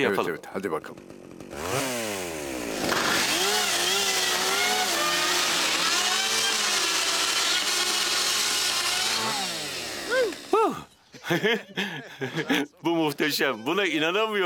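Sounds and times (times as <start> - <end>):
speech: 0.0 - 1.8, 10.1 - 14.4
chainsaw cutting thin metal roofing sheet: 1.0 - 10.9
laughter: 10.1 - 12.8.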